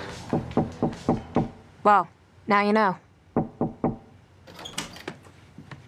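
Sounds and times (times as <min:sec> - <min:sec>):
knocking on a closed door: 0:00.3 - 0:01.6, 0:03.3 - 0:04.1
speech: 0:01.9 - 0:03.0.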